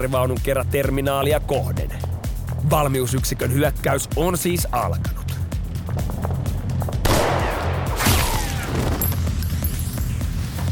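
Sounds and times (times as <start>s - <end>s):
speech: 0.0s - 2.0s, 2.6s - 5.2s
low rumbling backdrop: 0.0s - 10.4s
gunfire: 7.0s - 9.1s.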